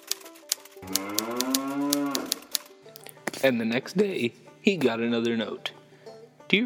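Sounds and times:
cow mooing: 0:00.8 - 0:02.5
speech: 0:03.4 - 0:05.8, 0:06.5 - 0:06.6.

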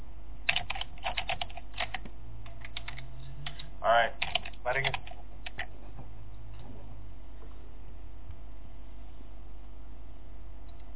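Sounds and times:
fingers typing a command on a computer keyboard: 0:00.4 - 0:05.7.

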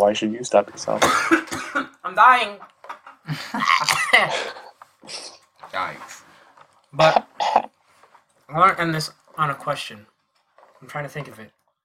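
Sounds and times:
speech: 0:00.0 - 0:02.7, 0:03.3 - 0:06.2, 0:06.9 - 0:07.7, 0:08.5 - 0:10.1, 0:10.8 - 0:11.6
harsh coughing fit: 0:01.0 - 0:01.8, 0:07.0 - 0:07.7.

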